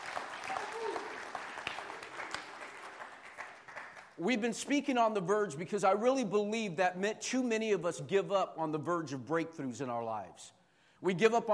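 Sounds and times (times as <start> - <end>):
room full of people applauding: 0.0 - 4.2
speech: 4.2 - 11.5.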